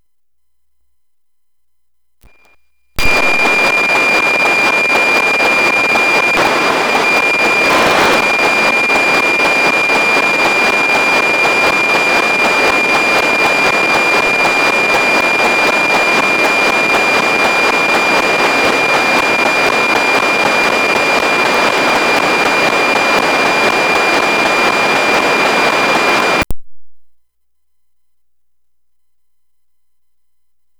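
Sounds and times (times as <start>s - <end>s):
NOAA17 satellite signal at closest approach: 3.0s - 26.4s.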